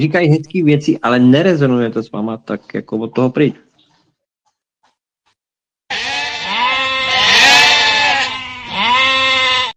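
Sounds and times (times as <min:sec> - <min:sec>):
speech: 0:00.0 - 0:03.7
sheep bleating: 0:05.9 - 0:09.7.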